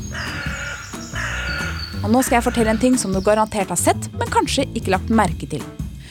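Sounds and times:
crows cawing with long harsh raspy calls: 0.0s - 3.2s
speech: 2.0s - 5.8s.

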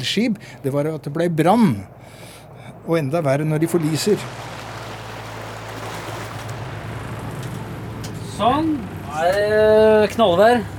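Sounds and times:
speech: 0.0s - 2.3s, 2.9s - 4.6s, 8.4s - 10.7s
dive boat engine hum: 0.0s - 10.7s
constant wash of water from a dive boat over calm water: 3.5s - 10.7s.

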